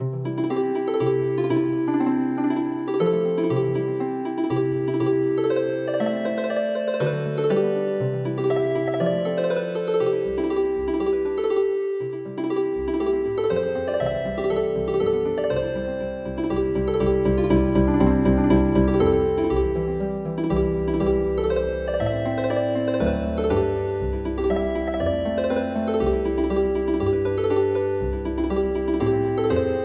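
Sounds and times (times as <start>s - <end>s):
traditional midi harp music: 0.0s - 29.8s.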